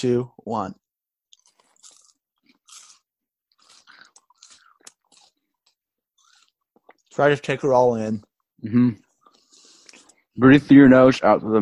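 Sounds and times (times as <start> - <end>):
speech: 0.0 - 0.8, 7.2 - 9.0, 10.4 - 11.6
crisp food being chewed into microphone: 1.3 - 7.1.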